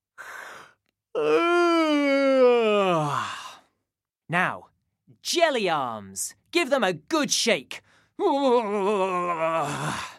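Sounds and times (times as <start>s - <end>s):
person giving a big exaggerated yawn: 1.2s - 3.7s, 8.2s - 10.1s
speech: 4.3s - 4.6s, 5.2s - 10.1s.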